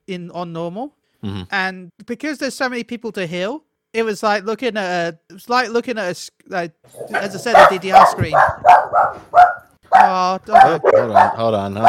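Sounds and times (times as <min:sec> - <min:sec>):
speech: 0:00.1 - 0:11.8
dogs barking: 0:06.9 - 0:11.8.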